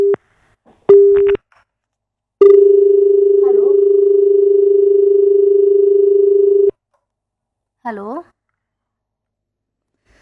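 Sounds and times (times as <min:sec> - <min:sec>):
telephone line tone as a call comes in: 0:02.4 - 0:06.7.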